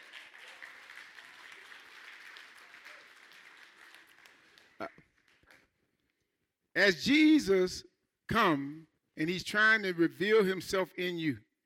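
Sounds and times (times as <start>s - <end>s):
audience applauding: 0.0s - 5.8s
speech: 4.8s - 5.1s, 6.8s - 11.5s.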